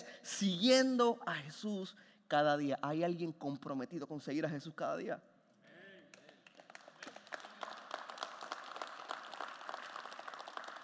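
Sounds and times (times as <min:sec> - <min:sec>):
speech: 0:00.4 - 0:05.3
audience applauding: 0:06.1 - 0:10.8.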